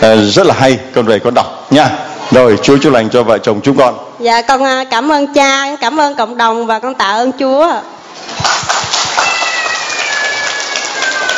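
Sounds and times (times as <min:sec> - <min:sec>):
speech: 0:00.0 - 0:08.8
crowd applauding: 0:08.3 - 0:11.3.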